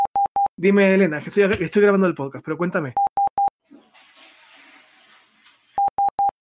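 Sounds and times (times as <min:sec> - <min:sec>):
telephone line beeps during a phone call: 0:00.0 - 0:00.5, 0:05.8 - 0:06.3
speech: 0:00.6 - 0:03.1.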